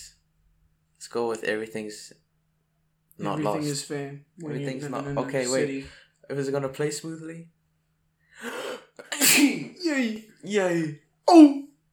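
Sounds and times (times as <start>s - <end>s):
speech: 1.1s - 2.3s, 3.2s - 7.6s, 8.4s - 11.6s
person sneezing: 8.4s - 10.1s.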